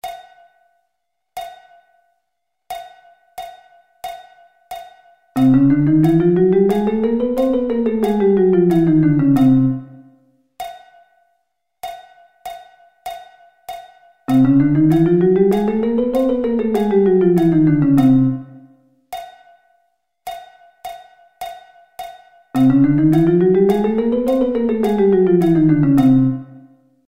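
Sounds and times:
chromatic scale played: 0:05.4 - 0:10.1, 0:14.3 - 0:18.7, 0:22.6 - 0:26.7.

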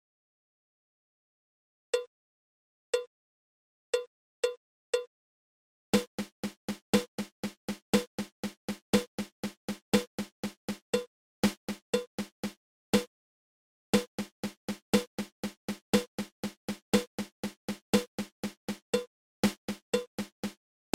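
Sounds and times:
drum single paradiddle: 0:06.0 - 0:13.1, 0:14.0 - 0:20.9.

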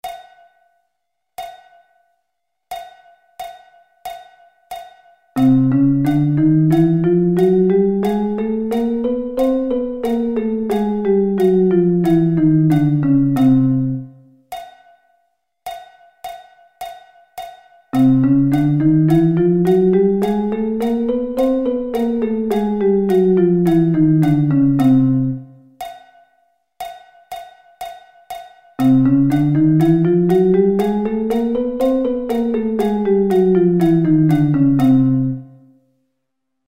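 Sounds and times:
chromatic scale: 0:03.5 - 0:14.3, 0:16.8 - 0:25.7, 0:27.4 - 0:35.7.

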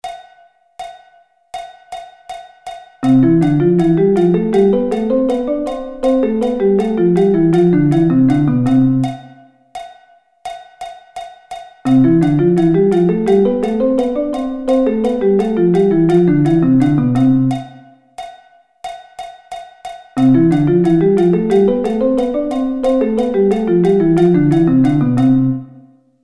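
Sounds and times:
musical thirds in C: 0:03.0 - 0:09.3, 0:11.9 - 0:17.8, 0:20.2 - 0:25.8.

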